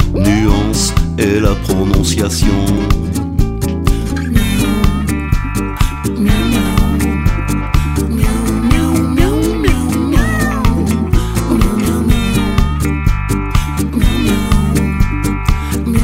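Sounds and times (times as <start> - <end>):
loud musical backing with a pulsing bass beat: 0.0 - 16.0
speech: 1.2 - 3.0
cat meowing: 10.1 - 11.0.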